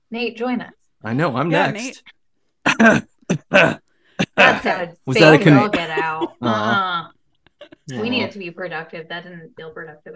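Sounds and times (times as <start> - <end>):
speech: 0.1 - 3.8, 4.4 - 7.1, 7.9 - 10.1
coughing and throat clearing: 2.6 - 4.7, 5.4 - 6.8
laughter: 3.6 - 6.8.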